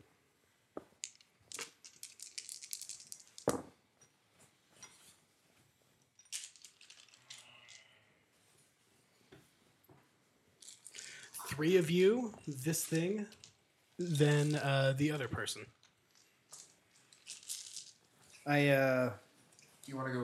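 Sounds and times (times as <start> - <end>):
dice clattering and rattling in a dice tray: 1.0 - 3.6, 6.3 - 7.8, 10.6 - 11.8, 12.4 - 14.6, 16.1 - 18.1
speech: 11.6 - 13.4, 14.0 - 15.8, 18.5 - 19.2, 19.9 - 20.2.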